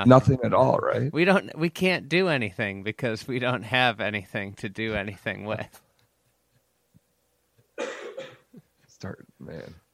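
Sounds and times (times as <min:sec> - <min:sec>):
speech: 0:00.0 - 0:05.8, 0:09.0 - 0:09.8
harsh coughing after laughing: 0:07.8 - 0:08.7.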